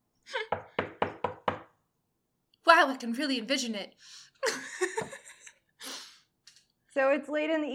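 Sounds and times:
loud sharp Foley knocks on a door: 0.5s - 1.7s
speech: 2.8s - 4.7s, 7.0s - 7.7s.

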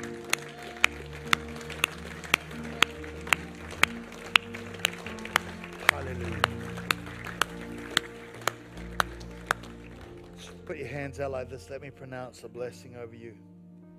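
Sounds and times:
murmur of voices: 0.0s - 9.1s
standing church audience clapping in unison as a clap offering: 0.0s - 11.1s
sustained music: 0.0s - 13.9s
speech: 10.9s - 13.5s.

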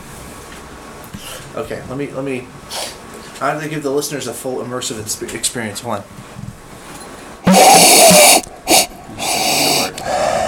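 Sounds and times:
speech: 1.5s - 2.8s, 3.4s - 6.4s
sniffing beer in a glass: 7.5s - 10.2s.

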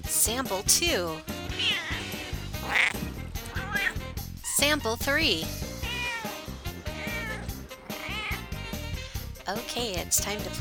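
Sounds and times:
speech: 0.2s - 1.4s, 2.7s - 2.9s, 4.6s - 5.6s, 9.5s - 10.6s
cat meowing insistently with wavering cries: 1.4s - 4.1s, 5.6s - 9.1s.

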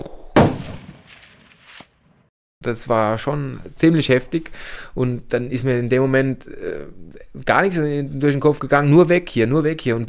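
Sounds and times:
single loud gunshot with rumbling echo: 0.4s - 2.3s
speech: 2.6s - 10.0s.

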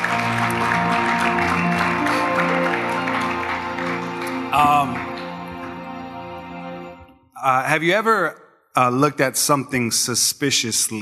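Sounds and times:
audience applauding: 0.0s - 6.9s
music: 0.0s - 11.0s
speech: 7.7s - 11.0s.

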